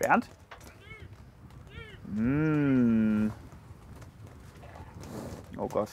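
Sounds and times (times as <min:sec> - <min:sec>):
speech: 0:00.0 - 0:00.4, 0:02.1 - 0:03.4, 0:05.6 - 0:05.9
bison grunting bellow while being fed carrots: 0:02.1 - 0:03.4.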